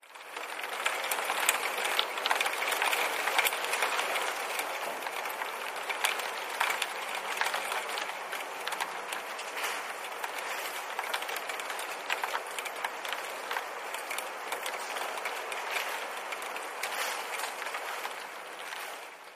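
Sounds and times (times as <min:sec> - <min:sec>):
rain on windowsill: 0:00.0 - 0:19.3.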